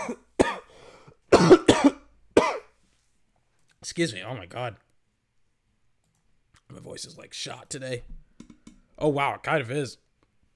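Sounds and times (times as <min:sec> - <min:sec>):
person in a loud coughing fit: 0:00.0 - 0:00.7, 0:01.3 - 0:02.8
speech: 0:03.8 - 0:04.9, 0:06.8 - 0:08.2, 0:09.0 - 0:10.0.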